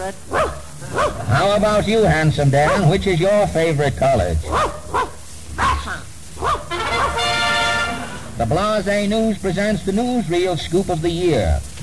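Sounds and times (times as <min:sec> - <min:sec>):
speech: 0:00.0 - 0:05.1, 0:08.4 - 0:11.8
faint noise: 0:00.0 - 0:11.8
dog barking in reply: 0:00.3 - 0:01.5, 0:02.6 - 0:02.9, 0:04.5 - 0:07.4
sustained musical tone: 0:06.7 - 0:08.5.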